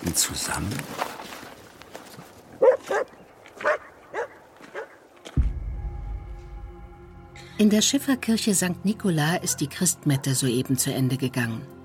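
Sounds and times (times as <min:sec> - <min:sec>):
speech: 0:00.1 - 0:01.4, 0:07.6 - 0:11.8
dog barking in short sharp yelping bursts: 0:02.6 - 0:05.0, 0:09.5 - 0:10.4.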